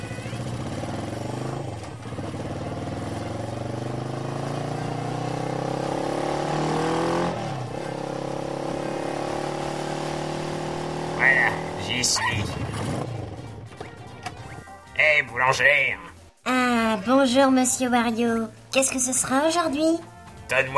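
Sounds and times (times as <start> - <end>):
motorcycle engine firing up and revving: 0.0 - 14.4
speech: 12.0 - 13.0, 15.4 - 16.1, 17.0 - 20.7.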